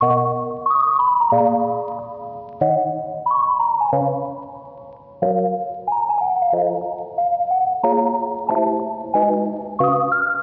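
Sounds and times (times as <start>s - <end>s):
lofi melody loop in F sharp major: 0.0s - 10.4s.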